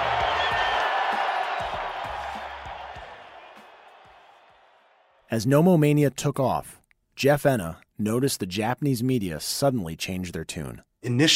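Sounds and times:
large stadium crowd roaring and cheering at Dodger Stadium: 0.0s - 5.3s
speech: 5.3s - 11.3s.

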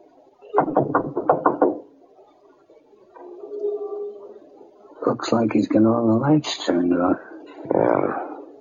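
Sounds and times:
speech: 0.5s - 1.2s, 5.2s - 8.3s
police officers knocking on a front door: 0.6s - 1.9s.

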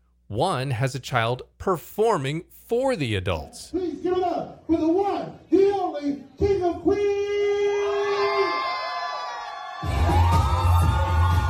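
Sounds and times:
speech: 0.3s - 7.6s
whoops and yells from crowd: 7.0s - 11.4s
crowd of adults and children screaming and cheering at a show: 7.3s - 11.4s.

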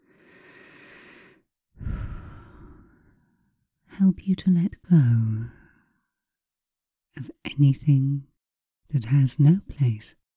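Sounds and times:
slow breathing during a relaxation exercise: 0.0s - 3.4s
speech: 4.0s - 5.6s, 7.2s - 8.3s, 8.9s - 10.2s.

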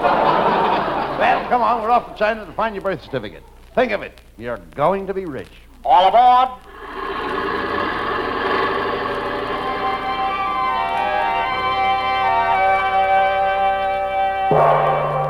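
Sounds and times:
laughter: 0.0s - 2.4s, 6.8s - 10.7s
speech: 1.5s - 7.0s
bell ringing: 9.9s - 15.2s
bell struck with a bright clang: 14.5s - 15.2s.

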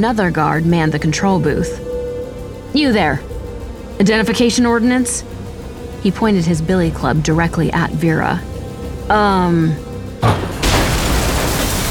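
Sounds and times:
speech: 0.0s - 1.9s, 2.7s - 3.3s, 4.0s - 5.4s, 6.0s - 8.5s, 9.1s - 10.4s
iron gate in a chain-link fence exploding with a deafening crash: 10.2s - 11.8s.

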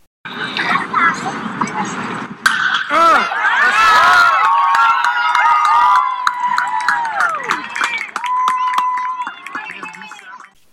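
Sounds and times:
bat crack as a batter hits a pitch: 2.4s - 2.9s
big crowd cheering at a major league ballpark: 2.5s - 10.6s
scattered shouts in the ballpark crowd: 2.8s - 10.2s.

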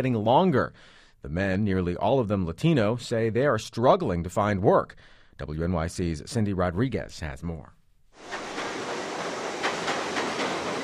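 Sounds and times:
speech: 0.0s - 8.4s
elevated subway train roaring overhead: 8.2s - 10.8s
faint rhythmic clacks of elevated subway train: 8.2s - 10.8s
hiss: 8.2s - 10.8s.

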